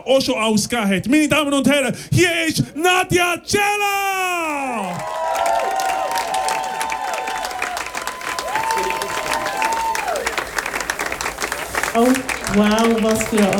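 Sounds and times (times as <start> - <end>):
speech: 0.0 - 5.6, 12.0 - 13.5
large audience clapping: 4.8 - 13.5
long sliding whistles from the audience: 5.7 - 13.2.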